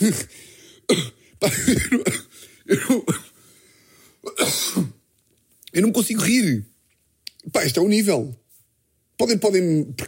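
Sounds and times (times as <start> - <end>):
speech: 0.0 - 3.3, 4.2 - 5.0, 5.8 - 6.7, 7.4 - 8.4, 9.2 - 10.0
person with a lingering cough after flu harsh coughing: 0.9 - 3.4, 4.2 - 5.0.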